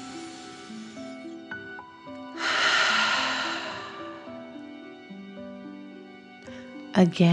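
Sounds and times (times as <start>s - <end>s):
soft sustained musical tones: 0.0s - 7.3s
quiet breath in through the nose: 2.3s - 4.6s
long forceful whooshing exhale through the mouth during a relaxation exercise: 2.4s - 4.6s
speech: 7.0s - 7.3s.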